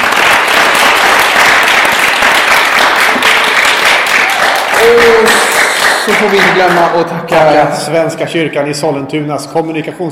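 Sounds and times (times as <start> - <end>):
audience applause for two guests who played music: 0.0 - 7.1
speech: 4.9 - 5.4, 6.1 - 10.0.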